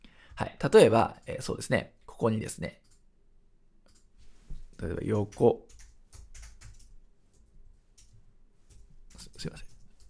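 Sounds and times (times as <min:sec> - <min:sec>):
speech: 0:00.4 - 0:02.8, 0:04.8 - 0:05.8, 0:09.4 - 0:09.7
typing on a hard-to-type-on computer keyboard: 0:05.1 - 0:10.0.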